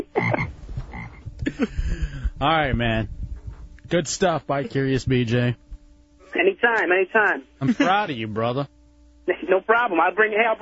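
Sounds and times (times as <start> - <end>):
frog croaking: 0.0 - 1.2
speech: 1.6 - 1.8, 2.4 - 3.2, 3.9 - 5.6, 6.5 - 8.8, 9.5 - 10.6.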